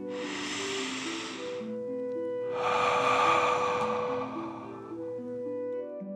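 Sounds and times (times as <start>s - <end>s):
long deep breath drawn in: 0.0s - 1.8s, 2.4s - 5.4s
soft sustained music: 0.0s - 6.1s.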